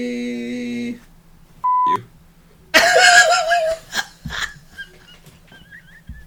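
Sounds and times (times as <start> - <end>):
short flat censor bleep tone over profanity: 1.6 - 2.0
laughter: 2.7 - 6.2.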